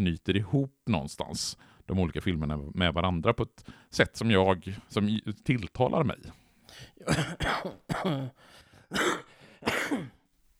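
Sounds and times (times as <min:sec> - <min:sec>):
speech: 0:00.0 - 0:10.2
person clearing throat into a microphone: 0:07.0 - 0:10.2
person coughing into a microphone: 0:07.0 - 0:10.2.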